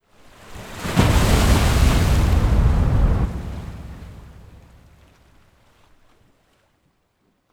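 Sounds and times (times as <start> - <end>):
water buildup: 0.5 - 5.5.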